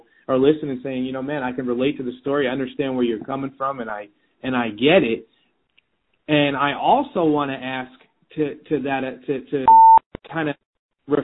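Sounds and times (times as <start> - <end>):
speech: 0.3 - 5.4, 6.3 - 11.2
call app steady electronic beep: 9.7 - 10.0.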